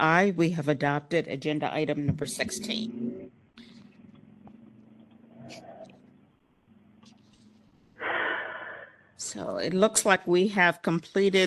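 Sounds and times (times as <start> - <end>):
speech: 0.0 - 3.1, 9.3 - 11.4
low rumbling hum: 1.8 - 8.0
heavy raspy breathing close to a microphone: 8.0 - 9.2.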